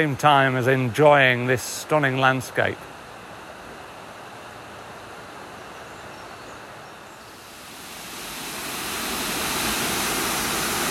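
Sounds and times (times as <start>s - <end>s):
speech: 0.0s - 2.9s
waterfall rushing: 7.3s - 10.8s.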